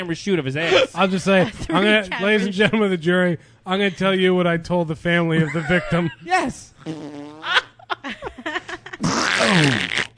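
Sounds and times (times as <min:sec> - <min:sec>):
speech: 0:00.0 - 0:07.6, 0:09.4 - 0:09.9
laughter: 0:05.4 - 0:06.3, 0:07.4 - 0:09.0
person making a loud sputtering fart sound with the mouth: 0:06.8 - 0:07.7, 0:09.0 - 0:10.1.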